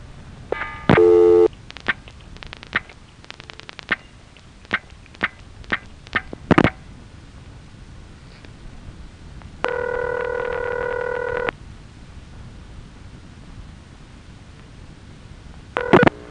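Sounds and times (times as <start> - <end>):
payphone coin collect and return tones: 0.5 - 1.5, 9.6 - 11.5, 15.8 - 16.1.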